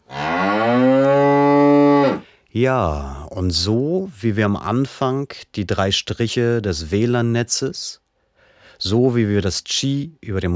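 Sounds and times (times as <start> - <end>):
cow mooing: 0.1 - 2.2
speech: 2.6 - 8.0, 8.8 - 10.5.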